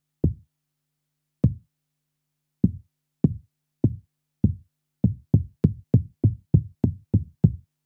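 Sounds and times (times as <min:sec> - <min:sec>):
bass drum: 0:02.6 - 0:07.6.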